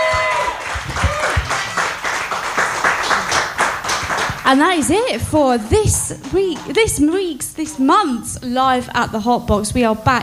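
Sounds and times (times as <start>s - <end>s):
live audience applause: 0.0s - 4.8s
speech: 4.5s - 10.2s.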